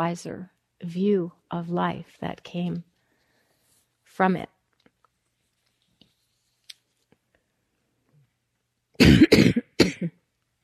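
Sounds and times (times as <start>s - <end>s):
speech: 0.0s - 2.9s, 4.1s - 4.6s
harsh coughing: 9.0s - 10.2s.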